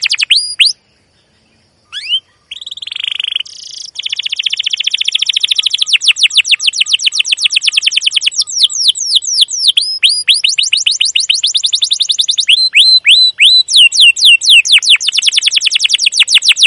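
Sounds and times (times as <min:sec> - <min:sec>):
canary chirping and trilling: 0:00.0 - 0:00.8, 0:01.9 - 0:16.6.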